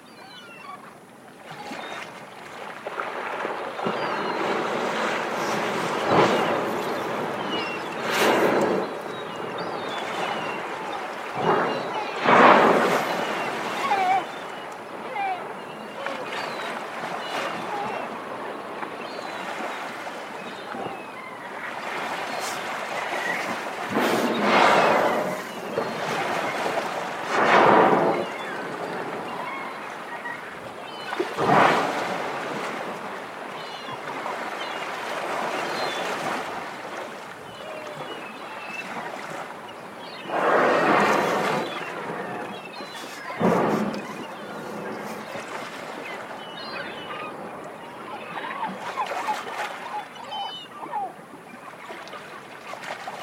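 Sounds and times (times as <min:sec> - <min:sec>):
humpback whales: 0:01.5 - 0:52.1.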